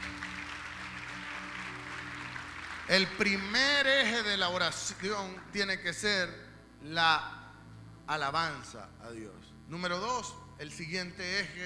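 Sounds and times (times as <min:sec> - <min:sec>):
congregation applause at a church service: 0:00.0 - 0:06.4
speech: 0:02.9 - 0:07.4, 0:08.1 - 0:11.6.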